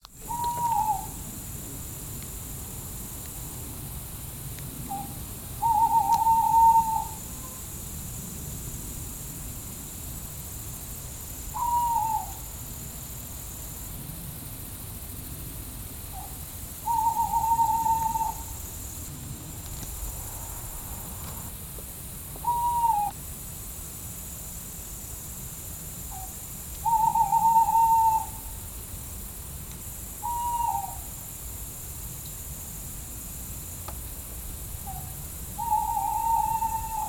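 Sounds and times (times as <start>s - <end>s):
Tawny Owl hooting: 0.2s - 1.2s, 4.9s - 7.7s, 11.5s - 12.5s, 16.1s - 18.6s, 22.4s - 23.2s, 26.1s - 28.6s, 30.2s - 31.1s, 34.8s - 37.0s.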